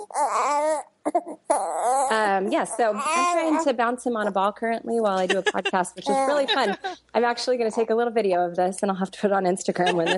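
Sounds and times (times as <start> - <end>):
newborn baby boy crying: 0.0 - 3.8, 5.2 - 7.0
speech: 0.1 - 10.1
laughter: 5.1 - 7.0, 9.8 - 10.1.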